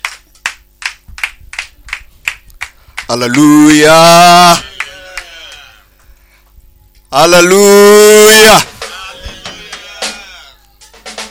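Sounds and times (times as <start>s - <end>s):
rhythmic clapping at a church service: 0.0s - 6.2s, 8.4s - 11.3s
speech: 3.1s - 4.7s, 7.1s - 8.7s
loud sustained vocal cry at a church service: 3.4s - 5.9s, 7.6s - 10.6s.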